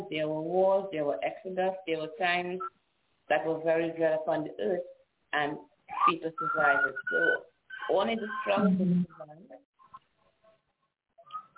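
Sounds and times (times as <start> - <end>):
speech: 0.1 - 9.7
caller whistling over telephone line: 5.9 - 8.6, 11.2 - 11.5.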